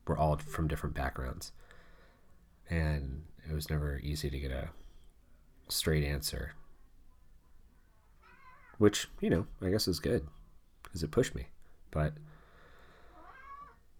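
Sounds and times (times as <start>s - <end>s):
speech: 0.1s - 1.7s, 2.7s - 4.8s, 5.7s - 6.6s, 8.8s - 12.3s
cat meowing: 8.2s - 8.8s, 13.1s - 13.8s.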